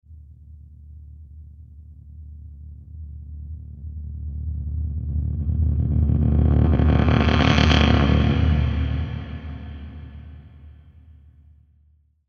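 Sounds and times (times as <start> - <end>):
dark scraping riser: 5.4 - 10.6.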